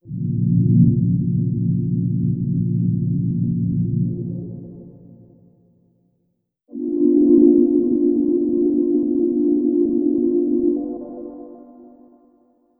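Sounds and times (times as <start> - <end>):
ambience in C: 0.0 - 5.4, 6.7 - 12.3.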